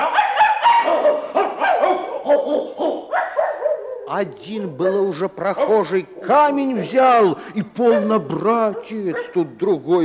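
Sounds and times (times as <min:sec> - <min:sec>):
pack of dogs barking and yelping: 0:00.0 - 0:04.2, 0:07.8 - 0:09.6
speech: 0:04.1 - 0:10.0.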